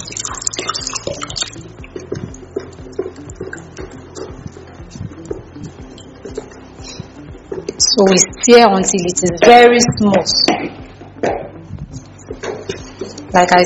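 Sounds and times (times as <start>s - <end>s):
water poured into a mixture to dissolve it: 0.0s - 3.9s
small drips and knocks: 0.0s - 7.8s
speech: 8.0s - 10.8s, 13.3s - 13.6s.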